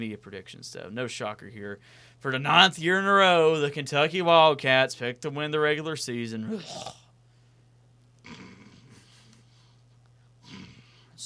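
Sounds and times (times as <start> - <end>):
speech: 0.0 - 7.0
low steady hum: 0.0 - 11.2
breathy rasping snores: 6.5 - 7.1, 8.2 - 9.1, 10.4 - 11.2.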